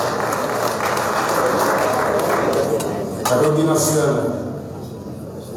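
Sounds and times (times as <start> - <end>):
sizable crowd applauding to welcome the mayor: 0.0 - 3.0
speech: 3.4 - 4.4.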